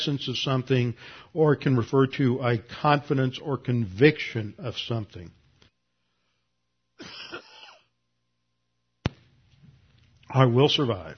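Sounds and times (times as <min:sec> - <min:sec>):
speech: 0:00.0 - 0:05.4, 0:10.3 - 0:11.1
raspy throat clearing: 0:07.0 - 0:07.9
single sharp cough: 0:07.0 - 0:07.9.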